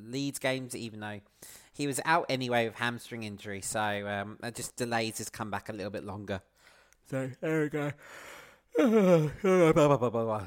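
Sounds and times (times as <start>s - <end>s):
speech: 0.1s - 10.4s
shorter second exhale: 6.6s - 7.0s, 8.0s - 8.7s
drawn-out voiced yawn with falling pitch: 8.4s - 9.4s.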